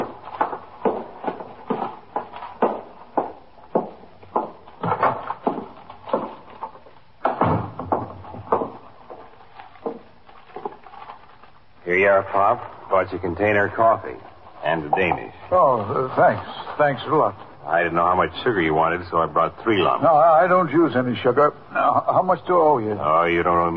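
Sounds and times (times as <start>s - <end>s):
footsteps climbing stairs: 0.0s - 10.7s
door opening and closing: 4.8s - 8.8s
speech: 11.9s - 23.7s.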